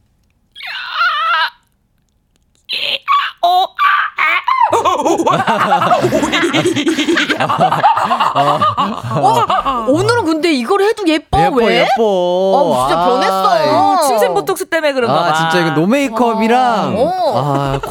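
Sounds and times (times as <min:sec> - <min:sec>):
voice imitating a startled gorilla with a high-pitched cry: 0:00.6 - 0:01.8, 0:02.7 - 0:04.9, 0:11.4 - 0:14.4, 0:15.1 - 0:17.8
person laughing loudly: 0:02.7 - 0:10.3, 0:15.3 - 0:17.8
speech: 0:05.3 - 0:17.8.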